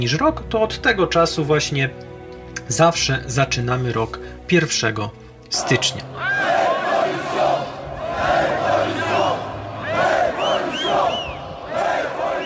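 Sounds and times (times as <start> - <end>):
speech: 0.0 - 6.4
large crowd shouting and roaring: 5.6 - 12.4.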